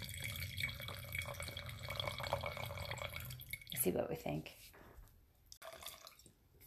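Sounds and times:
red blend wine pouring into a glass: 0.0s - 3.8s, 5.6s - 6.4s
speech: 3.8s - 4.8s.

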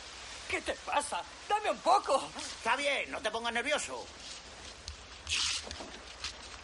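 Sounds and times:
faint noise: 0.0s - 6.6s
speech: 0.5s - 4.3s
sheet of newspaper ripped out in one quick tear: 5.3s - 6.5s.

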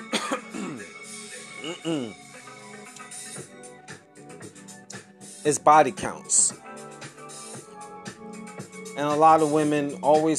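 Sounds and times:
cough-like hack: 0.0s - 0.9s, 1.6s - 2.2s
person clearing throat with harsh rasping bursts: 0.0s - 0.9s, 1.6s - 2.2s
speech: 1.8s - 2.2s, 5.4s - 6.5s, 9.0s - 10.3s.

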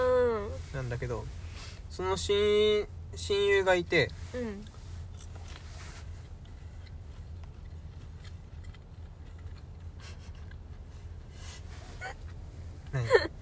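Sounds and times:
speech: 0.8s - 4.7s
chewing chicken nuggets: 5.2s - 11.3s.

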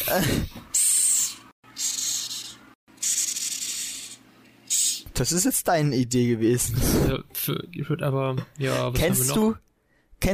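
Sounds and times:
speech: 0.1s - 0.6s, 5.2s - 10.3s
hissing cockroach hissing: 0.8s - 5.1s.

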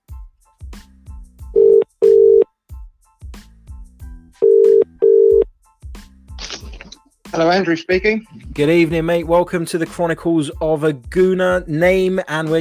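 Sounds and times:
telephone ringback for a phone-in call: 1.6s - 2.4s, 4.4s - 5.4s
speech: 7.4s - 12.5s.

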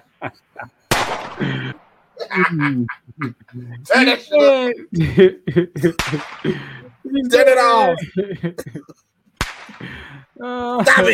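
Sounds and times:
laughter: 0.0s - 9.0s, 9.7s - 11.1s
speech: 0.2s - 0.8s, 1.4s - 9.1s, 9.7s - 11.1s
gunshot from a played video clip: 0.9s - 2.0s, 6.0s - 6.7s, 9.4s - 9.9s.

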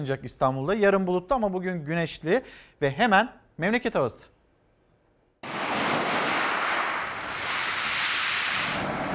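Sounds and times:
speech: 0.0s - 4.3s
sea waves breaking on a beach: 5.4s - 9.0s.

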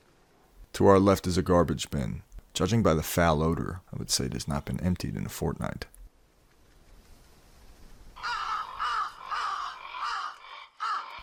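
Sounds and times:
speech: 0.8s - 6.0s
crows cawing while feeding: 8.2s - 11.2s.

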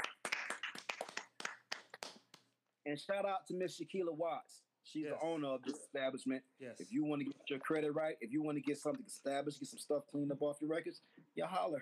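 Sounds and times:
small group clapping hands: 0.0s - 2.5s
speech: 2.8s - 11.8s.

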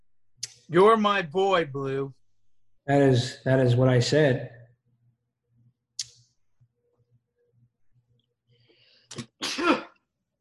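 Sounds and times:
speech: 0.7s - 2.2s, 2.9s - 4.6s
person sneezing: 9.1s - 10.0s.

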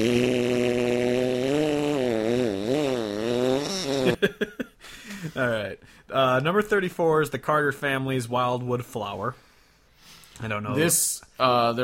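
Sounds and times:
buzzy fart sound effect: 0.0s - 4.2s
speech: 5.4s - 9.5s, 10.4s - 11.8s.

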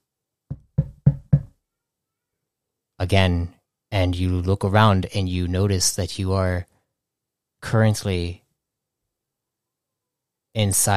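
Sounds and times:
firm knocking on a door: 0.5s - 1.6s
speech: 3.0s - 6.7s, 7.6s - 8.4s, 10.6s - 10.9s.

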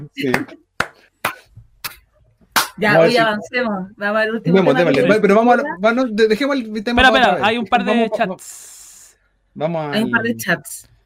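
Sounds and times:
speech: 0.0s - 0.6s, 2.8s - 8.8s, 9.6s - 10.9s
sharp slow hand claps: 0.2s - 2.0s, 2.6s - 2.8s.

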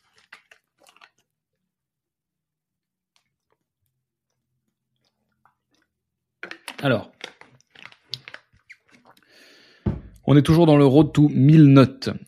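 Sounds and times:
person sipping a drink: 0.0s - 1.3s, 3.1s - 10.2s
swallowing and mouth noises: 0.0s - 1.4s, 3.1s - 10.2s
speech: 6.8s - 7.1s, 10.3s - 12.2s.

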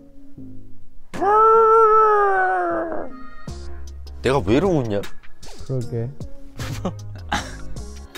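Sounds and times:
speech: 1.2s - 1.4s, 4.2s - 7.2s
person imitating a dog howl as a lullaby: 1.2s - 3.6s
laughter: 6.6s - 7.8s.

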